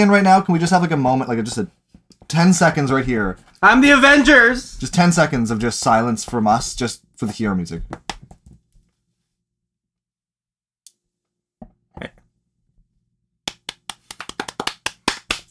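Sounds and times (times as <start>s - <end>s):
speech: 0.0s - 8.1s
hands clapping: 2.3s - 6.4s, 13.5s - 15.5s.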